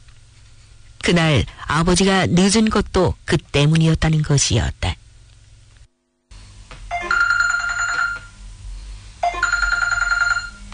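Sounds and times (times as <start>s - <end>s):
low hum: 0.0s - 10.7s
speech: 1.1s - 5.0s
telephone ringing: 6.9s - 8.4s, 9.2s - 10.7s.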